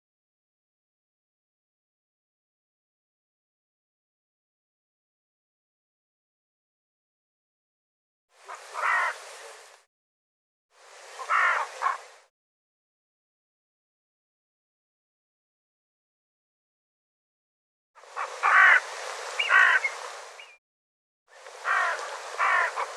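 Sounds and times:
bird harsh hoarse calls: 0:08.5 - 0:09.2, 0:11.2 - 0:12.1, 0:18.0 - 0:20.6, 0:21.6 - 0:22.9.

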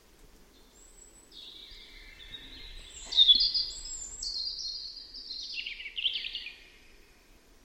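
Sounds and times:
European robin singing: 0:00.0 - 0:07.4.

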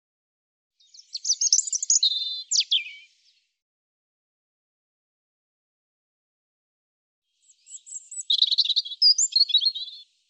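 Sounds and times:
European robin song fragment: 0:00.8 - 0:03.5, 0:07.4 - 0:10.2.

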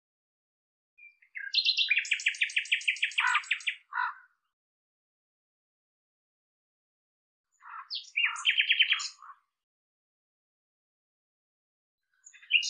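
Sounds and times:
Common nightingale song of fast buzzy repeated notes: 0:01.0 - 0:03.9, 0:07.9 - 0:09.2, 0:12.2 - 0:12.6.

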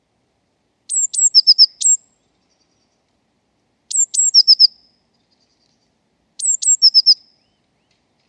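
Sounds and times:
Eurasian blue tit calling: 0:00.9 - 0:03.0, 0:03.9 - 0:05.8, 0:06.4 - 0:07.6.

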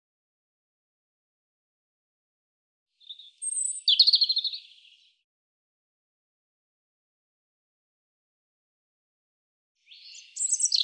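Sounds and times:
European robin song phrase: 0:03.0 - 0:05.2, 0:09.8 - 0:10.8.

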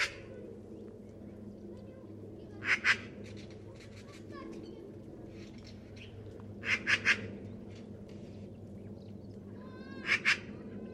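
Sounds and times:
steady low hum: 0:00.0 - 0:10.9
harsh bird calls: 0:02.6 - 0:10.9.

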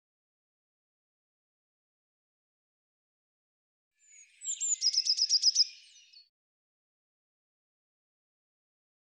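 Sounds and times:
Eurasian blue tit calling: 0:04.3 - 0:06.2.

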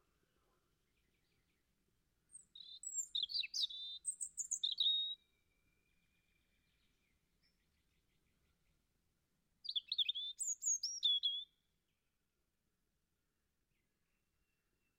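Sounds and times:
European robin singing: 0:00.8 - 0:08.8, 0:09.6 - 0:12.0.

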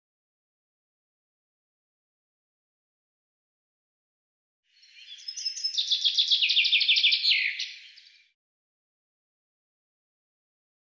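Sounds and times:
bird giving a fast run of sharp high chirps: 0:04.8 - 0:08.4.

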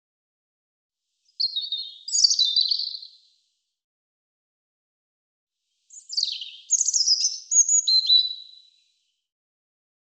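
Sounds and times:
European robin song: 0:01.2 - 0:03.4, 0:05.9 - 0:09.1.

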